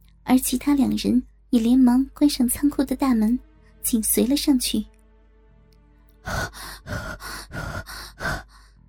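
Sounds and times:
speech: 0.3s - 4.9s, 6.2s - 8.4s
deep heavy rasping breathing: 6.2s - 8.8s.

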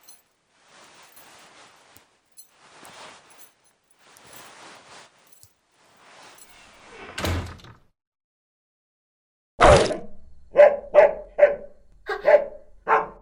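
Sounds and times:
rustle: 0.0s - 6.8s
door banging shut: 7.1s - 7.9s
large wolfdog barking: 10.5s - 13.2s.

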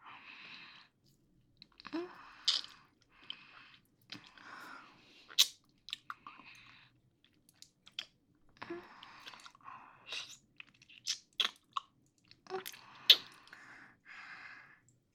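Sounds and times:
chewing cake while being fed: 1.6s - 4.5s, 5.2s - 13.7s.

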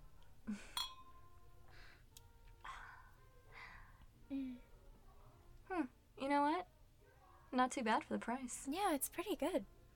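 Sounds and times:
speech: 0.5s - 0.8s, 7.6s - 9.8s
glasses clinking in a toast: 0.7s - 1.2s.

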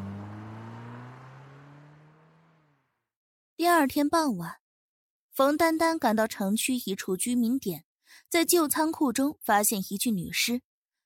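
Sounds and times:
car engine starting and driving away: 0.0s - 3.0s
speech: 3.6s - 4.6s, 5.4s - 10.7s.

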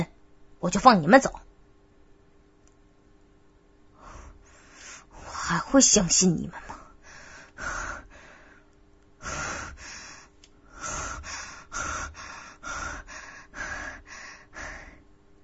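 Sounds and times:
speech: 0.0s - 1.5s, 5.5s - 6.7s
rapid heavy gasping breathing: 6.6s - 15.0s.

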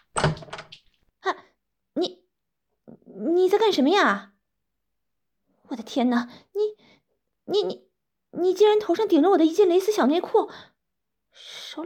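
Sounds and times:
door swinging open with a clunk and rattle: 0.0s - 0.8s
speech: 3.6s - 4.3s, 5.8s - 6.9s, 7.5s - 10.7s, 11.4s - 11.8s.

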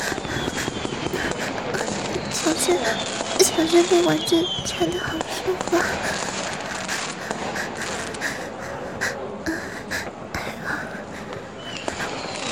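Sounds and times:
fireworks popping and crackling: 0.0s - 8.1s
constant hissing noise: 0.0s - 12.4s
faint breathy sounds: 0.0s - 12.4s
speech: 2.5s - 6.3s.

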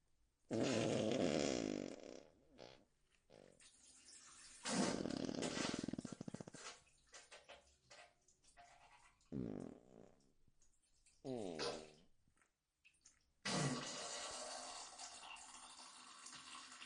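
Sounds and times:
long loud sputtering farts: 0.5s - 3.6s, 4.6s - 6.8s, 9.3s - 10.2s, 11.2s - 12.0s.

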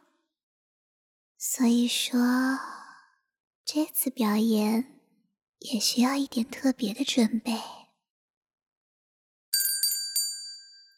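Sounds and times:
speech: 1.4s - 2.8s, 3.7s - 5.0s, 5.6s - 7.8s
small bell ringing: 9.5s - 10.9s.

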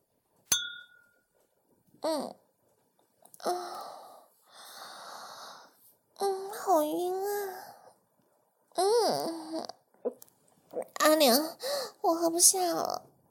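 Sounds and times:
glasses of alcohol clinking in a toast: 0.5s - 1.2s
speech: 2.0s - 2.4s, 3.4s - 4.0s, 6.2s - 7.7s, 8.8s - 9.8s, 10.7s - 13.1s.

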